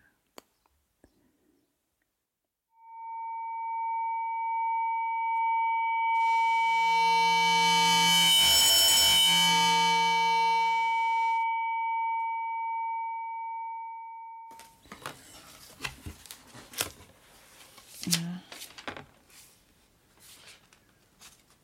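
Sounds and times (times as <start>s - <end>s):
steady electronic tone: 2.8s - 13.8s
sheets of paper rustling and crinkling: 14.6s - 21.6s.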